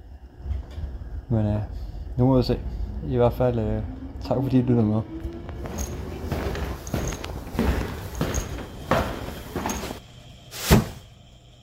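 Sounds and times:
speech: 1.3 - 5.2
footsteps scuffing entering a small apartment: 5.6 - 10.0.

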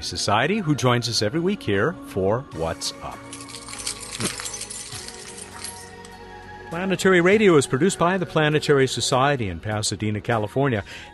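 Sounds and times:
speech: 0.0 - 3.4, 6.7 - 11.1
car keys jangling: 3.2 - 6.2.

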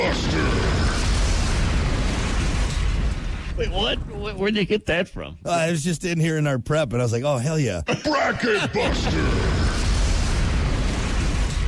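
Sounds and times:
explosion sound effect: 0.0 - 5.3, 8.7 - 11.6
speech: 3.6 - 9.5.

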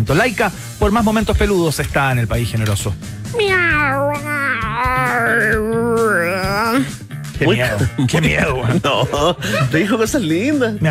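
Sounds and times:
speech: 0.0 - 10.8
cat meowing: 3.4 - 6.8
laughter: 7.6 - 10.0.

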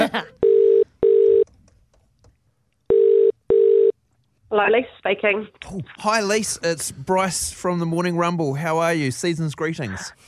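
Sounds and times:
telephone ringback tones in a double-burst pattern: 0.4 - 1.4, 2.9 - 3.9
speech: 4.6 - 10.2.

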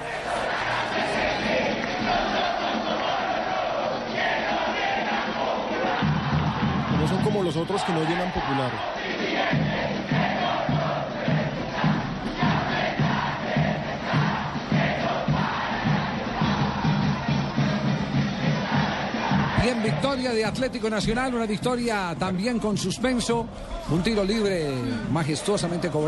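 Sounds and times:
stadium crowd of football fans chanting in unison: 0.0 - 21.4, 23.4 - 26.0
speech: 7.3 - 9.7, 19.8 - 26.0.

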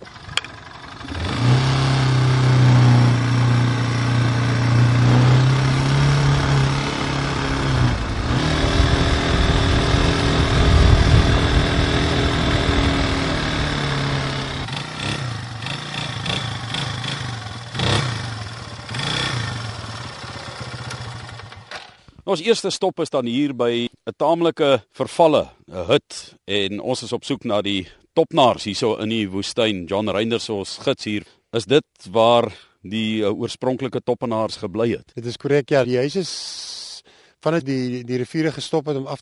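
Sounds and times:
motorcycle engine starting, idling and revving: 0.0 - 22.2
speech: 22.3 - 39.1.

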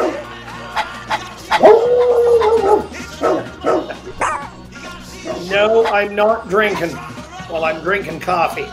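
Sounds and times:
dog barking: 0.0 - 0.2, 0.8 - 4.5, 5.2 - 6.0
laughter: 0.0 - 7.3
dog howling whine: 1.1 - 4.5
speech: 5.6 - 8.7.

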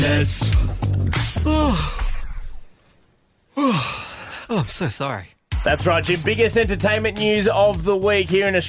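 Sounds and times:
speech: 0.2 - 0.7, 4.6 - 8.6
yawn: 1.4 - 2.5, 3.5 - 4.7.

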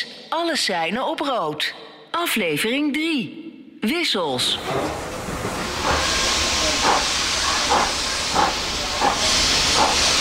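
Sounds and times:
speech: 0.0 - 5.1
large steam locomotive hissing steam: 4.5 - 10.1.

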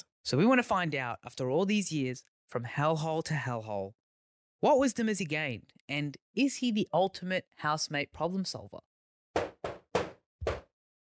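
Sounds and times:
speech: 0.2 - 4.0, 4.6 - 8.9
firm knocking on a door: 9.4 - 10.7.

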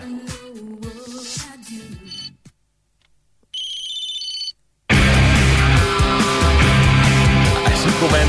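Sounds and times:
mobile phone ringtone with short electronic melody: 2.1 - 2.3, 3.6 - 4.6
loud full-band music: 4.9 - 8.2.

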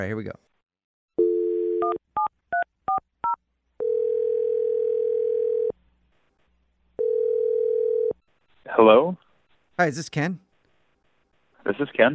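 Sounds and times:
speech: 0.0 - 0.5, 8.8 - 9.2, 9.8 - 10.4, 11.7 - 12.1
telephone dial tone: 1.2 - 2.0, 3.8 - 5.7, 7.0 - 8.2.

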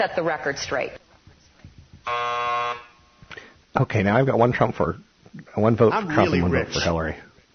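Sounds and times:
speech: 0.0 - 1.0, 3.8 - 7.3
game show buzzer: 2.0 - 3.2.

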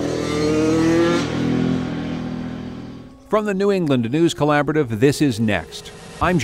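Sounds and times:
all-terrain vehicle engine revving in New Hampshire: 0.0 - 3.1
speech: 3.3 - 6.4.

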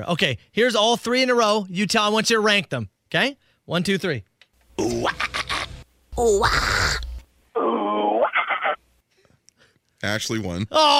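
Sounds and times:
speech: 0.0 - 5.3, 6.2 - 6.8, 10.0 - 10.9
person imitating a guttural metal song growl: 4.8 - 8.4.

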